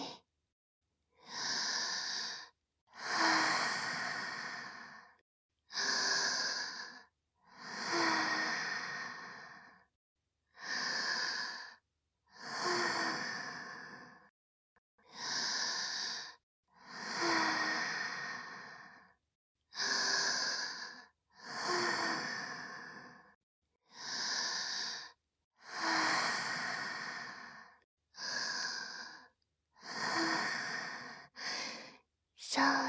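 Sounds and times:
deep slow breathing in and out: 1.2s - 9.9s, 10.6s - 14.3s, 15.0s - 32.1s.

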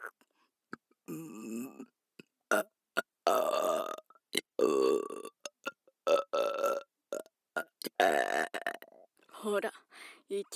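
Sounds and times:
loud long guttural burps: 1.0s - 1.9s, 2.5s - 8.9s
speech: 9.5s - 10.5s.

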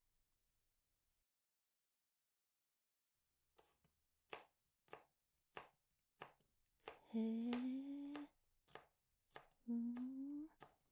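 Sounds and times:
knife chopping an onion lengthwise along the grain: 3.6s - 10.9s
speech: 7.1s - 7.8s.

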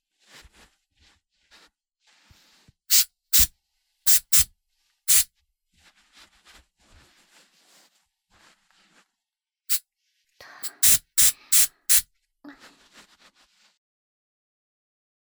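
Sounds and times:
hair spray hissing sprays: 2.9s - 3.5s, 4.1s - 4.5s, 5.1s - 5.3s, 10.6s - 12.0s.

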